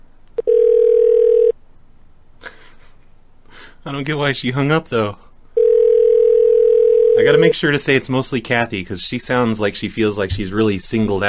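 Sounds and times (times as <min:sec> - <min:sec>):
low-pitched telephone ringback tone: 0:00.4 - 0:01.5, 0:05.6 - 0:07.6
speech: 0:03.8 - 0:05.2, 0:07.2 - 0:11.2.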